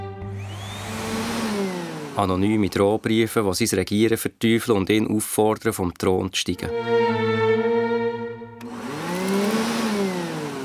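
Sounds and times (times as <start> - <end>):
vacuum cleaner running: 0.2 - 3.0, 8.6 - 10.6
speech: 2.2 - 7.7.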